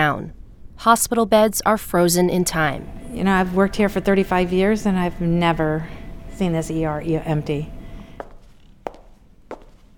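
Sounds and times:
speech: 0:00.0 - 0:07.8
faint room hum: 0:00.0 - 0:09.9
heel footsteps echoing in empty hospital corridor: 0:08.1 - 0:09.9.

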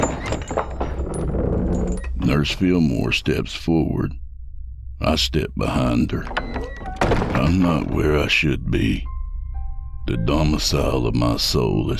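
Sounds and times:
basement door flung open with a heavy wooden thunk: 0:00.0 - 0:02.1, 0:06.2 - 0:08.3
rattling knocks: 0:00.0 - 0:02.1, 0:06.2 - 0:08.2
door hinges squeaking: 0:00.0 - 0:02.2, 0:06.2 - 0:08.2
speech: 0:02.3 - 0:04.2, 0:05.0 - 0:06.4, 0:07.1 - 0:09.1, 0:10.1 - 0:11.9.

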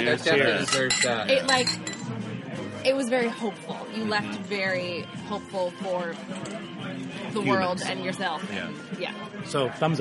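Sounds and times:
speech: 0:00.0 - 0:02.0, 0:02.8 - 0:10.0
glasses clinking together in a toast: 0:00.0 - 0:02.2, 0:06.3 - 0:06.7
overlapping voices and murmuring: 0:00.0 - 0:10.0.

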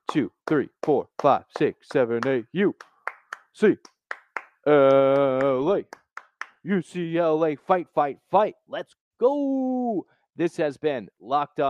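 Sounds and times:
sharp hand claps of an eight-count clap cheer: 0:00.0 - 0:06.8
speech: 0:00.1 - 0:02.9, 0:03.6 - 0:03.9, 0:04.6 - 0:06.0, 0:06.6 - 0:11.6.

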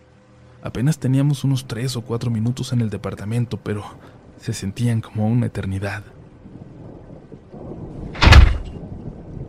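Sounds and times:
low rumbling background: 0:00.0 - 0:09.4
speech: 0:00.6 - 0:06.2
bedroom door slamming shut: 0:08.2 - 0:08.8.

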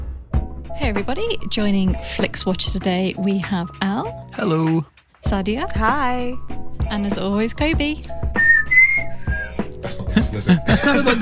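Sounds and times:
speech: 0:00.7 - 0:08.2, 0:09.8 - 0:11.2
person whistling a short tune: 0:08.4 - 0:09.7
laughter: 0:10.2 - 0:11.2.

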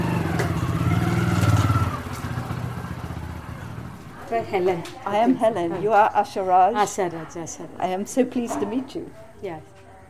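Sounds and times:
motorbike engine droning as an arriving woman rides it: 0:00.0 - 0:04.9
speech: 0:04.3 - 0:09.7.

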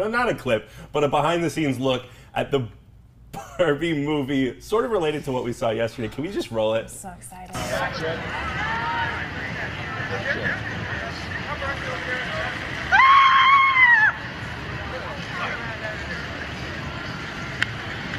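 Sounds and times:
speech: 0:00.0 - 0:09.2
crowd babble: 0:07.1 - 0:12.9, 0:14.1 - 0:18.1
loud high-pitched scream: 0:12.9 - 0:14.2.

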